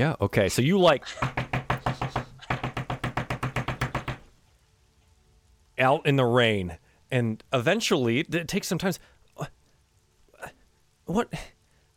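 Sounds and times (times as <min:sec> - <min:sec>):
speech: 0:00.0 - 0:01.4, 0:05.8 - 0:09.6, 0:10.4 - 0:11.6
knocking on a door: 0:01.1 - 0:04.3.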